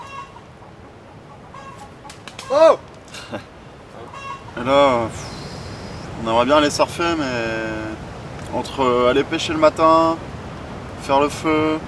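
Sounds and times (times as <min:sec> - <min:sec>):
chickens clucking and squawking: 0:00.0 - 0:02.6, 0:03.2 - 0:06.0
outdoor noise: 0:00.0 - 0:11.8
speech: 0:02.5 - 0:03.5, 0:04.6 - 0:05.3, 0:06.2 - 0:10.3, 0:11.1 - 0:11.8
laughter: 0:03.1 - 0:03.5.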